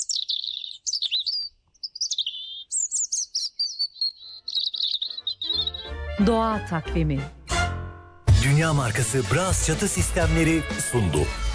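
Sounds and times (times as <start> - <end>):
European robin singing: 0.0 - 6.7
speech: 6.2 - 7.4, 8.4 - 11.5.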